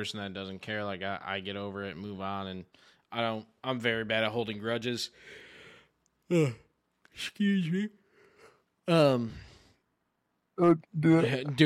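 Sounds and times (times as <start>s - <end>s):
speech: 0.0s - 5.4s, 6.3s - 6.6s, 7.2s - 8.0s, 8.8s - 9.5s, 10.6s - 11.6s
big drawn-out yawn with a voiced groan: 6.3s - 6.7s.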